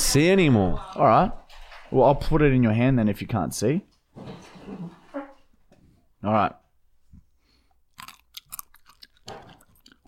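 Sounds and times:
speech: 0.1s - 5.0s, 6.2s - 6.6s
chewing a berry: 7.9s - 10.0s.

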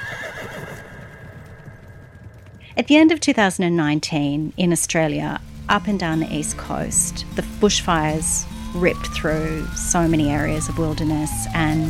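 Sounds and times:
horse whinnying: 0.0s - 2.2s
steady outdoor hum: 0.9s - 11.8s
speech: 2.8s - 11.8s.

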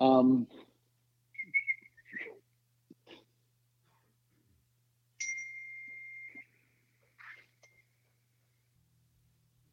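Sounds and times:
speech: 0.2s - 0.6s
person failing to whistle with breathy puffs and thin tones: 1.4s - 2.4s, 6.0s - 6.8s.

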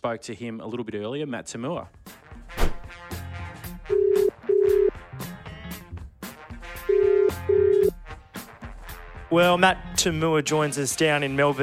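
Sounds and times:
speech: 0.0s - 2.7s, 9.3s - 11.6s
busy musical background: 1.4s - 11.6s
phone line ringing back in double-ring bursts: 3.9s - 4.9s, 6.9s - 7.9s
telephone dialing: 4.0s - 4.9s, 7.0s - 7.9s.

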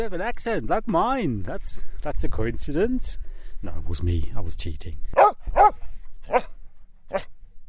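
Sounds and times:
speech: 0.0s - 6.5s
dog barking: 5.2s - 7.3s.

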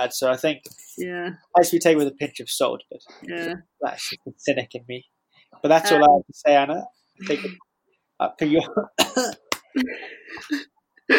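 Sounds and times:
speech: 0.0s - 11.1s
person coughing: 9.0s - 11.1s
throaty vocal sounds: 9.7s - 11.1s.

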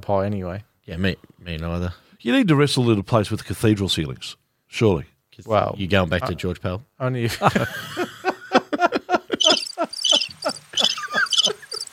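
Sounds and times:
speech: 0.0s - 8.1s
laughter: 7.3s - 11.9s
crickets chirping: 9.4s - 11.9s.

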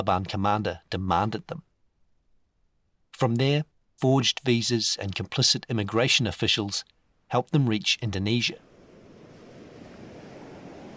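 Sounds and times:
speech: 0.0s - 1.7s, 3.2s - 8.7s
breathy wind-like hiss: 8.4s - 10.9s
ocean surf rushing at the shore in Indonesia beside a wooden boat: 8.4s - 10.9s.

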